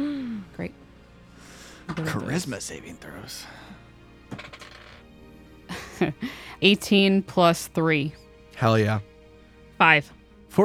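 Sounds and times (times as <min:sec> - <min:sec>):
speech: 0:02.0 - 0:03.8, 0:06.0 - 0:09.1, 0:09.8 - 0:10.6
dice clattering across a hard table: 0:04.3 - 0:05.1.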